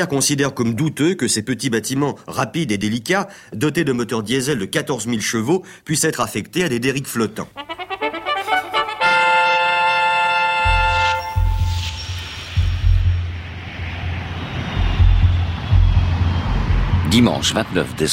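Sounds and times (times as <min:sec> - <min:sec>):
speech: 0:00.0 - 0:07.9, 0:17.2 - 0:18.1
navy reconnaissance aircraft engine drone over the Mediterranean: 0:09.4 - 0:18.1
brief tone: 0:10.6 - 0:16.6.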